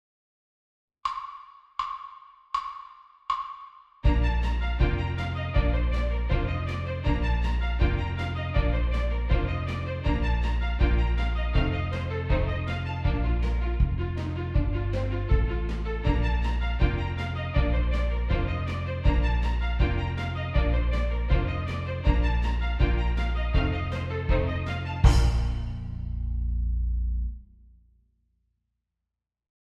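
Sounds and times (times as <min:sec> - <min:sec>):
five-step scale study music: 0:04.0 - 0:27.4.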